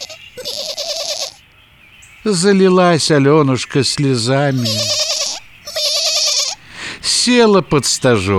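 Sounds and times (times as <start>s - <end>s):
small white goat kid bleating: 0.0s - 1.4s, 4.5s - 6.6s
speech: 2.3s - 5.0s, 7.2s - 8.3s.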